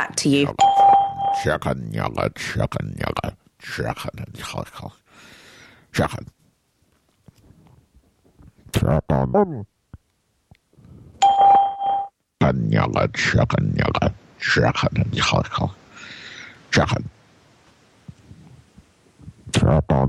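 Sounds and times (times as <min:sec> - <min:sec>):
speech: 0:00.0 - 0:00.7, 0:01.4 - 0:06.4, 0:08.8 - 0:09.7, 0:12.4 - 0:15.8, 0:16.7 - 0:17.2, 0:19.5 - 0:20.0
recorded voice speaking: 0:00.0 - 0:05.0, 0:05.9 - 0:06.4, 0:08.6 - 0:09.7, 0:12.4 - 0:15.8, 0:16.7 - 0:17.2, 0:19.4 - 0:20.0
electronic beep signalling start of recording: 0:00.6 - 0:01.5.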